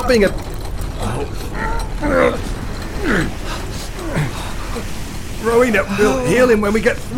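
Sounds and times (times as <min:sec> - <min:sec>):
heavy gate mechanism grinding shut with metallic creaks: 0:00.0 - 0:05.4
speech: 0:00.1 - 0:07.1.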